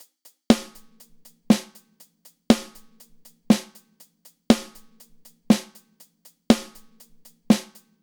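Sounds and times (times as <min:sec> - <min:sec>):
hi-hat: 0:00.0 - 0:08.0
snare drum: 0:00.5 - 0:07.9.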